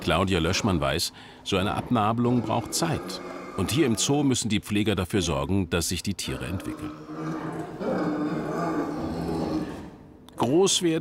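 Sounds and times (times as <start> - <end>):
mother bear in a zoo bellowing at the enclosure gate: 0.0 - 4.3, 6.4 - 10.0
speech: 0.0 - 7.6, 10.4 - 10.9.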